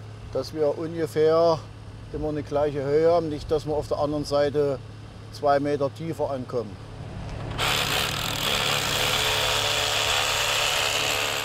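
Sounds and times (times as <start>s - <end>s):
speech: 0.3s - 6.9s
power drill boring into a wall to set dowels for anchoring irons: 7.5s - 11.4s.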